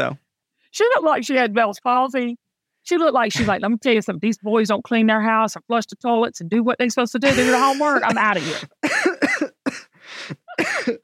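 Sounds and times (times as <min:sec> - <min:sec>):
speech: 0:00.0 - 0:11.0
rough raspy coughs from a person just recovered from COVID: 0:07.2 - 0:11.0
breathy throat clearing: 0:07.3 - 0:11.0.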